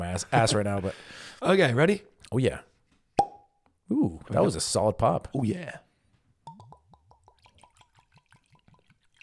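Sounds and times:
speech: 0.2s - 2.7s, 3.9s - 5.8s
drink glugging into a glass from a bottle: 6.5s - 9.2s.

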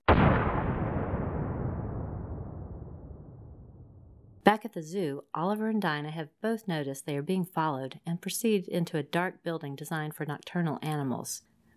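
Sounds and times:
grenades exploding on a man's belt: 0.0s - 4.4s
speech: 4.5s - 11.7s.

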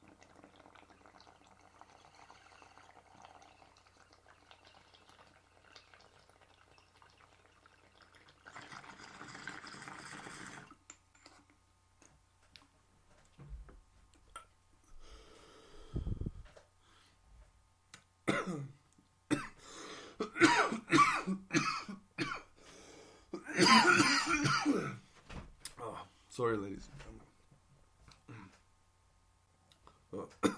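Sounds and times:
water bubbling in a bong: 0.0s - 10.8s
person drawing in a long breath from a bong: 14.9s - 17.2s, 19.6s - 20.2s, 22.6s - 23.3s
person coughing heavily after a bong hit: 18.3s - 18.7s, 19.3s - 19.6s, 20.2s - 22.5s, 23.4s - 25.0s
speech: 26.4s - 27.0s.

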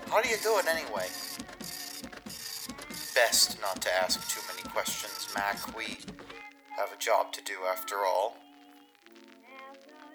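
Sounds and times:
dot matrix printer printing: 0.0s - 6.2s
speech: 0.1s - 1.6s, 3.2s - 8.4s.

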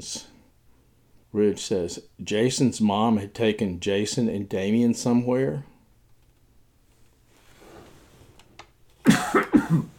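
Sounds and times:
speech: 0.0s - 0.3s, 1.3s - 5.7s
person coughing harshly: 9.0s - 9.9s.

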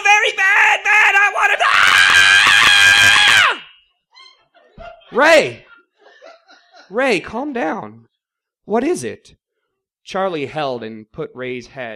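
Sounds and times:
man screaming frantically from a bedroom: 0.0s - 3.7s
panicked yelp: 0.0s - 5.8s
laughter: 4.2s - 7.3s
speech: 5.2s - 5.7s, 6.9s - 8.1s, 8.7s - 9.4s, 10.1s - 11.9s.

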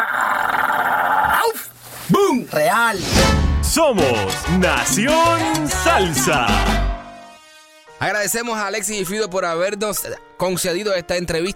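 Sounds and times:
dog growling and barking: 0.0s - 1.5s
speech: 2.5s - 6.8s, 8.0s - 11.5s.

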